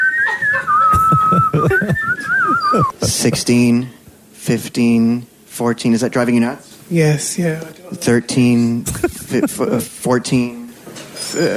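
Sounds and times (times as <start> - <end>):
two people whistling together: 0.0 - 3.0
laughter: 0.3 - 3.7, 8.8 - 9.9
speech: 1.3 - 10.6, 11.4 - 11.5.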